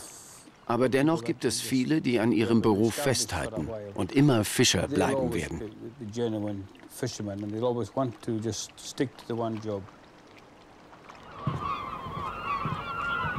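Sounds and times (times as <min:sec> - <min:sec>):
steady rush of moving water: 0:00.0 - 0:13.3
speech: 0:00.7 - 0:10.0
many seagulls crying around a boat: 0:11.1 - 0:13.3.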